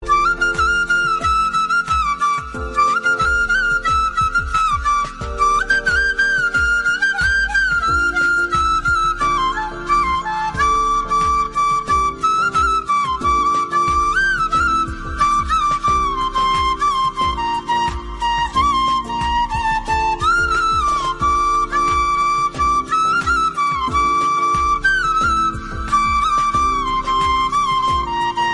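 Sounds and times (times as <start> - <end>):
flute version ringtone: 0.0 - 28.5.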